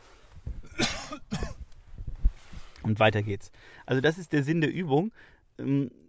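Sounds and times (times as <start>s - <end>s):
low rustling noise: 0.0s - 0.8s, 1.5s - 4.2s
cough: 0.6s - 1.7s
throat clearing: 0.6s - 1.7s
speech: 2.9s - 6.0s.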